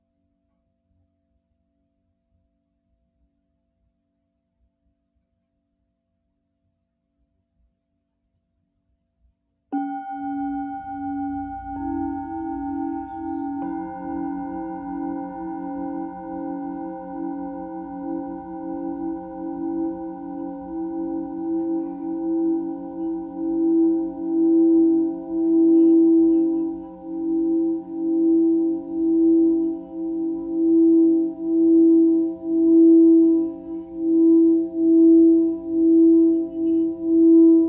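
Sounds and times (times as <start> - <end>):
singing bowl ringing: 9.8 - 37.6.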